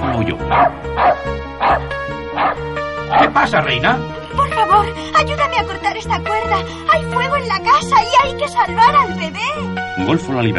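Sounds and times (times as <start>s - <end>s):
dog barking urgently: 0.0s - 3.6s
steady sustained tonal background: 0.0s - 10.5s
speech: 0.2s - 2.1s, 3.1s - 10.5s.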